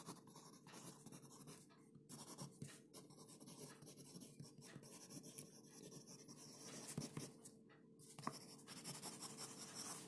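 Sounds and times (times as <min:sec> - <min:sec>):
pen scratching across paper: 0:00.0 - 0:07.4, 0:08.1 - 0:10.0
faint steady hum: 0:00.0 - 0:10.0.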